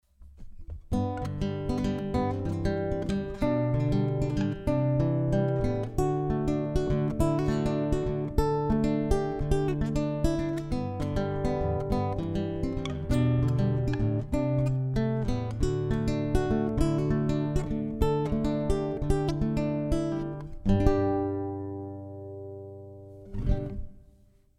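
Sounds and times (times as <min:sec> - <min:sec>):
nylon-string guitar picking through acoustic pickup in bypass: 0:00.2 - 0:24.4.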